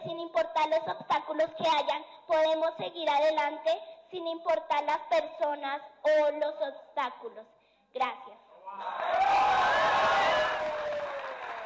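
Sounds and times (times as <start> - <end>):
speech: 0.4 - 10.8
cheering voices: 8.7 - 11.6
audience applause after a speech: 8.8 - 11.6.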